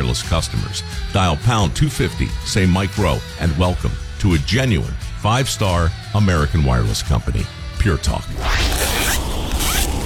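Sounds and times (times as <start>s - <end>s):
speech: 0.0s - 8.8s
zipper being pulled up on a child's new warm winter coat: 8.3s - 10.0s.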